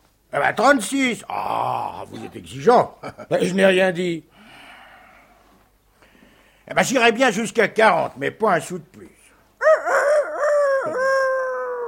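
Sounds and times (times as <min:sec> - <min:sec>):
speech: 0:00.4 - 0:04.3, 0:06.7 - 0:09.8
person imitating a rooster crowing: 0:09.6 - 0:11.8.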